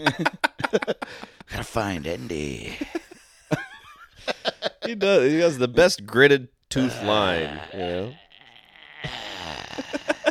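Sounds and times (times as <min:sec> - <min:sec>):
speech: 0:00.0 - 0:02.9, 0:04.9 - 0:08.2
man's voice imitating snoring: 0:07.2 - 0:10.2.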